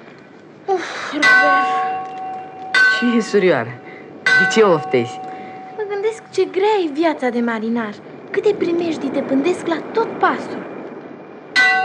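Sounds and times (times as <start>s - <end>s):
large ship's fog bell on the mast clanging in fog: 1.2s - 6.1s, 11.6s - 11.8s
speech: 3.0s - 3.8s, 4.4s - 5.2s, 6.4s - 10.6s.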